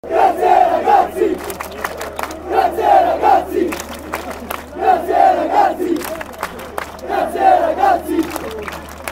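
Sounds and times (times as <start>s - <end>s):
football curva nord crowd chanting: 0.0s - 9.1s.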